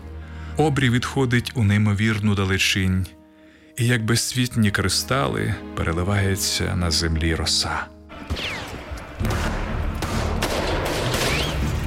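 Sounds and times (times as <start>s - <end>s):
speech: 0.6s - 3.2s, 3.8s - 8.6s, 9.2s - 9.5s
dense continuous fusillade of gunfire: 8.2s - 11.8s.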